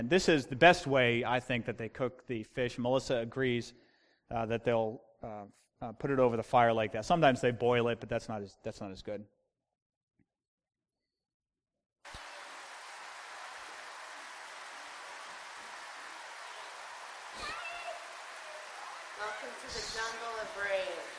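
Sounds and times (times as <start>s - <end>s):
speech: 0.0s - 9.4s
steady dense rainfall: 12.1s - 21.1s.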